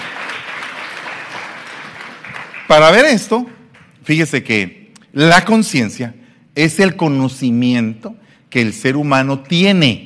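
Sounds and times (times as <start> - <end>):
large indoor audience applauding loudly: 0.0 - 3.2
speech: 2.7 - 10.0.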